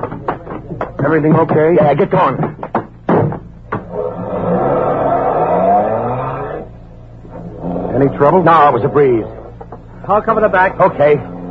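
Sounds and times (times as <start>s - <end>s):
two quick thumps: 0.0s - 4.1s, 7.2s - 11.4s
speech: 1.0s - 2.6s, 8.0s - 9.4s, 10.1s - 11.3s
car engine revving as the car drives off: 3.8s - 11.4s.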